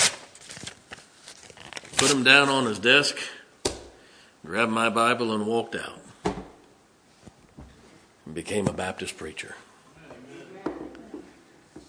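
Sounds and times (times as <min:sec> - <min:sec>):
paper being torn up: 0:00.0 - 0:02.7
speech: 0:02.0 - 0:03.4, 0:04.4 - 0:06.0, 0:08.5 - 0:09.7.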